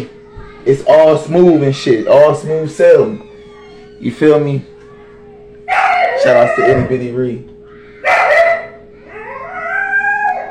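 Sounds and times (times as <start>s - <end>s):
speech: 0.0s - 3.3s, 4.0s - 4.7s, 6.2s - 7.5s
dogs howling in a long wavering howl: 2.9s - 4.1s, 5.7s - 7.2s, 8.0s - 10.4s
dogs barking: 5.7s - 7.0s, 8.0s - 10.4s.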